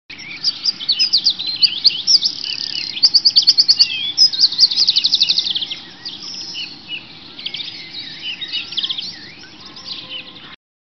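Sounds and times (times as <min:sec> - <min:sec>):
birds tweeting: 0:00.1 - 0:10.6.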